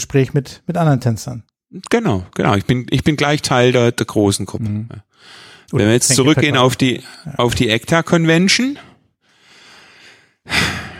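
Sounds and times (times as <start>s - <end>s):
speech: 0.1s - 8.9s
person breathing with soft inhale and breathy exhale: 5.1s - 5.8s, 8.9s - 10.9s.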